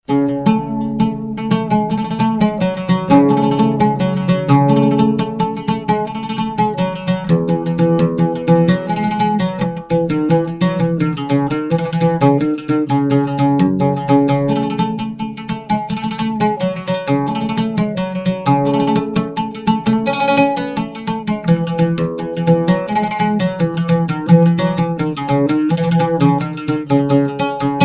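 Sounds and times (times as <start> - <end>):
Arabic guitar being tuned: 0.0 - 27.8.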